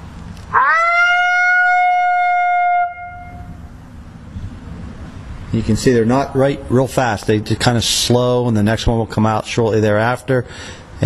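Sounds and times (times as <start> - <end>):
human voice imitating a female lonesome howl: 0.6 - 3.5
speech: 5.6 - 11.0.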